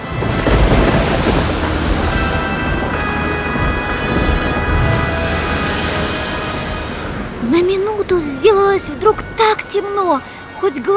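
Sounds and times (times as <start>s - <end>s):
deep rumbling thunder: 0.0s - 8.6s
loud continuous storm roar: 0.0s - 9.4s
heavy crashing waves: 0.0s - 10.6s
speech: 8.5s - 10.9s.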